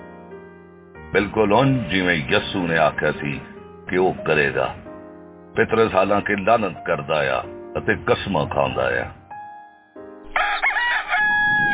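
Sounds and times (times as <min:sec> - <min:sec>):
speech: 0:01.1 - 0:04.8, 0:05.6 - 0:09.2
rooster crowing: 0:10.3 - 0:11.7.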